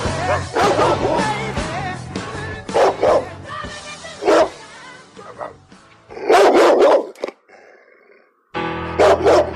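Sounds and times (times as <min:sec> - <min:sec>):
dog barking: 0:00.2 - 0:01.3, 0:02.7 - 0:03.3, 0:04.2 - 0:04.6, 0:05.2 - 0:05.6, 0:06.2 - 0:07.2, 0:09.0 - 0:09.5.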